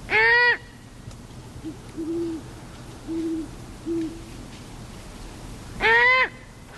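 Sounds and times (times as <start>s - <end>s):
great horned owl parents calling with low soft hoots: 1.6s - 2.4s, 3.0s - 4.2s, 5.8s - 6.4s.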